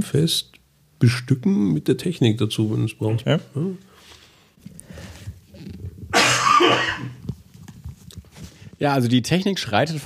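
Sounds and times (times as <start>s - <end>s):
speech: 0.0s - 3.9s, 8.8s - 10.0s
low rumbling noise: 0.0s - 10.0s
harsh raspy cough: 6.1s - 7.2s.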